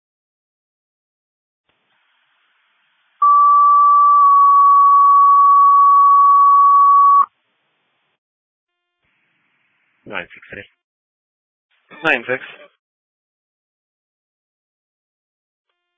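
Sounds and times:
city fire dispatch electronic alert tone: 0:03.2 - 0:07.2
speech: 0:10.1 - 0:10.7, 0:12.0 - 0:12.6.

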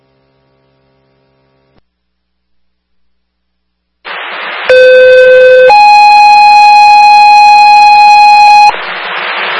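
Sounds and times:
burst of radio static: 0:04.1 - 0:05.7, 0:08.4 - 0:09.5
low fire dispatch alarm tone over a radio: 0:04.7 - 0:08.8.

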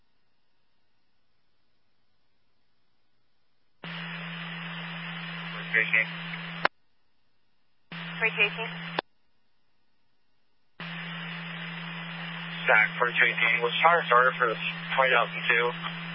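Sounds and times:
harsh radio static as a channel keys open and cuts off: 0:03.8 - 0:06.7, 0:07.9 - 0:09.0, 0:10.8 - 0:16.1
steady low hum with the radio static: 0:03.8 - 0:06.7, 0:07.9 - 0:09.0, 0:10.8 - 0:16.1
speech: 0:05.8 - 0:06.6, 0:08.2 - 0:09.0, 0:12.7 - 0:16.1.

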